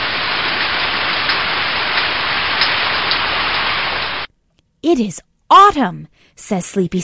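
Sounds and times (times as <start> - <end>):
steady dense rain falling outdoors on a cool wet autumn day: 0.0 - 4.3
speech: 4.8 - 7.0.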